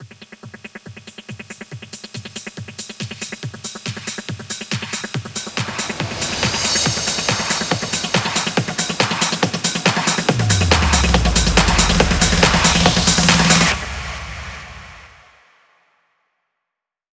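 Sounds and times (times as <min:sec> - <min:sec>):
hands up and trance fills at 140 BPM: 0:04.0 - 0:15.2.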